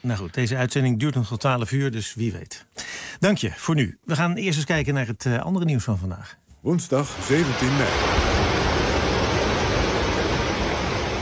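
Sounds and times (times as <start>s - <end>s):
speech: 0.0s - 8.4s
floodwater flowing through the streets of a northern Italian city after heavy rain: 7.0s - 11.2s.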